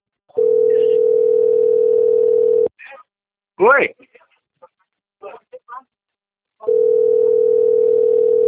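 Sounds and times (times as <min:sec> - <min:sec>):
telephone dial tone: 0:00.4 - 0:02.7, 0:06.7 - 0:08.4
speech: 0:03.6 - 0:04.1.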